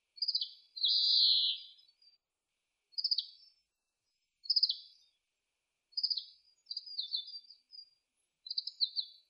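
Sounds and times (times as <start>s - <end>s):
oriental greenfinch singing: 0.2s - 2.1s, 3.0s - 3.5s, 4.4s - 5.1s, 6.0s - 9.2s.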